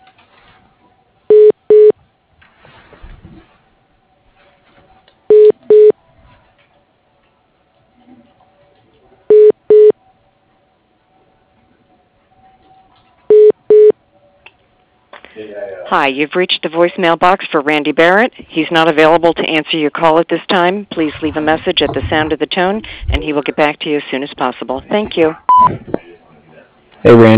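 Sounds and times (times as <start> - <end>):
faint low hum: 0.0 - 27.3
telephone keypad dialing tones on an office phone line's automated menu: 5.3 - 5.9, 9.3 - 9.9, 13.3 - 13.9
speech: 15.9 - 26.0, 27.0 - 27.3.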